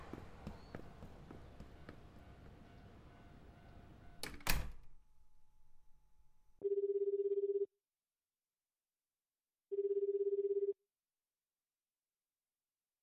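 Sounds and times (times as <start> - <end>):
smartphone call ringback tone buzzing: 6.6 - 7.7, 9.7 - 10.8.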